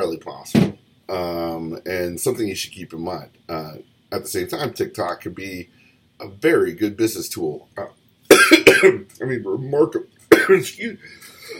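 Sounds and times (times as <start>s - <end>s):
speech: 0.2s - 7.8s, 8.8s - 11.3s
person coughing: 8.3s - 9.0s, 10.3s - 10.6s.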